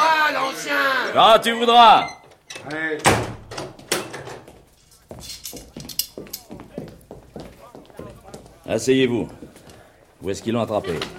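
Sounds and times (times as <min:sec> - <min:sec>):
speech: 0:01.2 - 0:03.3, 0:08.7 - 0:09.4, 0:10.2 - 0:11.1
door shut with a loud thump: 0:02.0 - 0:04.5
scattered footsteps in the room: 0:03.7 - 0:11.1.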